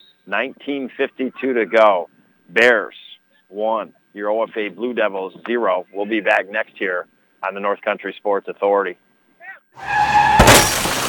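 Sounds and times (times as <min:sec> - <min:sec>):
speech: 0:00.3 - 0:09.0, 0:09.8 - 0:10.1
car crash impact: 0:09.8 - 0:11.0
tires screeching in a skid: 0:09.8 - 0:11.0
debris crunching: 0:10.0 - 0:11.0
glass shattering: 0:10.2 - 0:11.0.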